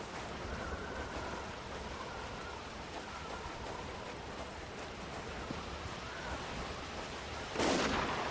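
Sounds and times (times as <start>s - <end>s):
steady rushing rain-like noise: 0.0s - 8.2s
sniper rifle shot in a video game: 7.6s - 8.2s.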